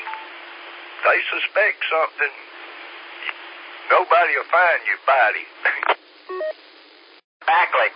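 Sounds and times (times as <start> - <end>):
speech: 1.1 - 2.5, 3.2 - 5.9, 7.5 - 7.9
mobile phone two-tone electronic beep: 6.3 - 6.5
thin phone-line hiss: 6.3 - 6.6.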